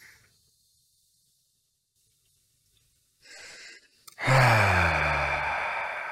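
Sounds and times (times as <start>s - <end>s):
group of people breathing together in a guided breathing exercise: 3.2s - 6.0s.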